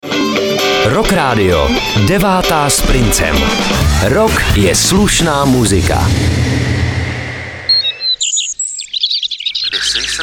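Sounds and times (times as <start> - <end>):
speech: 0.8 - 6.6
dense rumbling wash of noise: 0.8 - 8.2
birds singing at dawn in high chirps and trills: 7.1 - 10.2.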